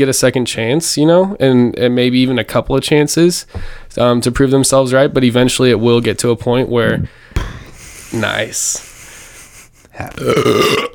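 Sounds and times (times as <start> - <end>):
speech: 0.0 - 7.5, 8.1 - 8.9, 10.0 - 10.9
loud drawn-out burp: 10.2 - 10.9.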